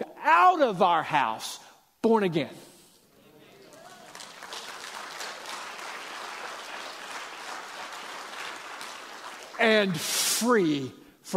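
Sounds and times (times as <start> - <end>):
speech: 0.3 - 2.7, 9.6 - 11.3
crowd applauding: 3.5 - 10.0.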